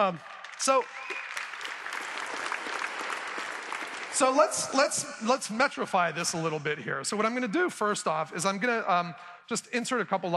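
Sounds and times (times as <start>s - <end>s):
speech: 0.0s - 1.1s, 4.2s - 10.3s
audience applause: 0.0s - 5.5s.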